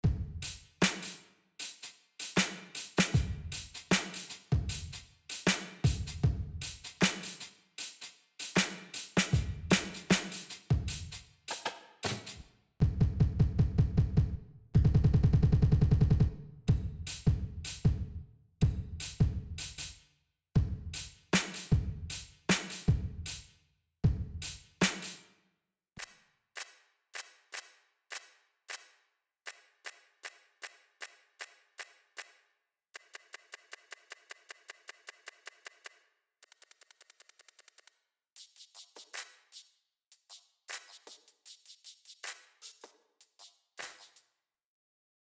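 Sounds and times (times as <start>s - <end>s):
drum stems: 0.0s - 20.0s, 20.6s - 25.2s.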